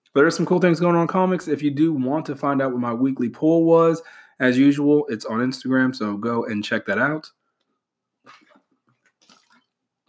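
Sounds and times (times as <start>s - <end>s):
speech: 0.1s - 7.4s
person drinking water: 8.2s - 10.0s
quiet gulps and swallows: 8.2s - 10.0s.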